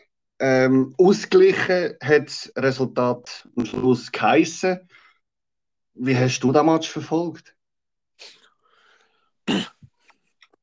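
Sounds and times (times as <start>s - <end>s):
speech: 0.4s - 5.0s, 6.0s - 7.6s, 8.2s - 8.4s, 9.5s - 9.7s
faint throaty catches and breaths: 8.2s - 10.6s
harsh coughs: 9.4s - 10.1s.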